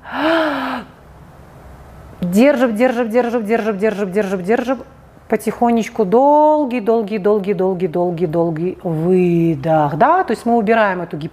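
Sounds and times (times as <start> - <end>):
sharp gasp before holding breath as a calming exercise: 0.0 - 1.0
speech: 2.4 - 11.3.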